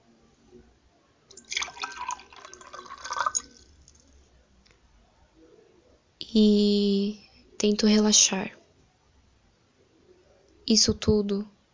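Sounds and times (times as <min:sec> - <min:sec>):
water pouring into a glass: 0:01.3 - 0:04.1
speech: 0:06.4 - 0:06.9, 0:07.6 - 0:08.6, 0:10.7 - 0:11.6.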